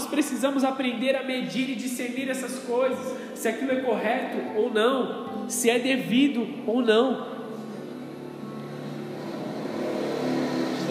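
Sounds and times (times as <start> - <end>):
speech: 0.1 - 7.4
motorcycle engine passing by: 8.5 - 10.8.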